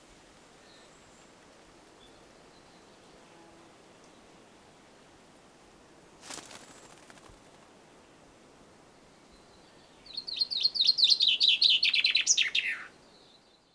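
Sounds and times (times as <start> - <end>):
common chaffinch Fringilla coelebs singing a descending trill: 10.0 - 12.9.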